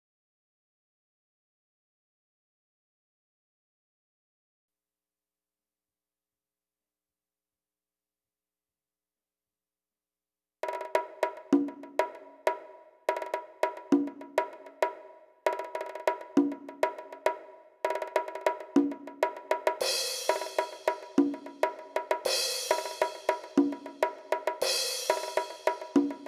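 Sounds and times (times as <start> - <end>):
percussion: 10.6 - 26.2.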